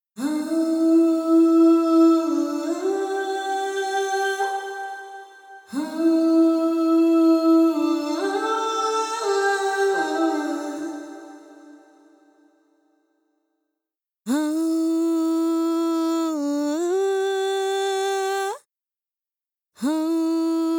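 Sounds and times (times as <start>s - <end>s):
woman singing: 0.2s - 11.9s, 14.3s - 18.7s, 19.8s - 20.7s.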